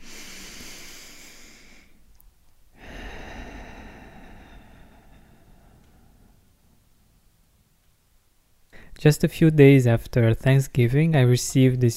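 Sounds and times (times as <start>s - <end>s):
deep breath drawn in through the nose: 0.0s - 2.0s, 2.8s - 6.5s
speech: 9.0s - 11.9s.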